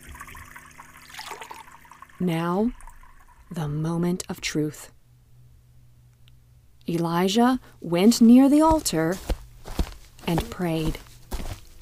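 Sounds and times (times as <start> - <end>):
water rushing out of tipped jars onto an altar: 0.0 - 2.2
speech: 2.2 - 2.8, 3.5 - 5.0, 6.9 - 9.4, 10.3 - 11.1.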